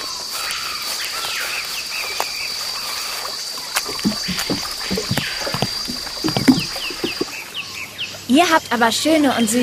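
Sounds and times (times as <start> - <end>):
frogs croaking in a humid forest: 0.0 - 8.8
steady drone of insects in a humid forest: 0.0 - 9.5
bird chirps in a humid forest: 1.2 - 9.5
dugout canoe paddling through water: 2.9 - 7.5
speech: 8.4 - 9.6.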